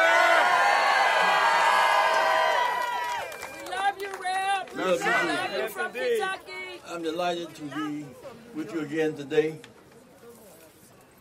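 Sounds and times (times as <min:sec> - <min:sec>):
large crowd screaming and cheering: 0:00.0 - 0:03.6
speech: 0:04.9 - 0:09.7.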